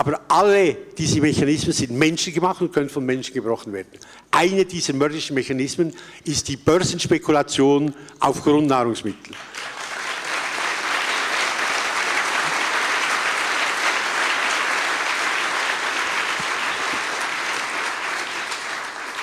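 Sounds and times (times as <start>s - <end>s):
speech: 0.0s - 9.7s
audience applause: 9.4s - 19.2s.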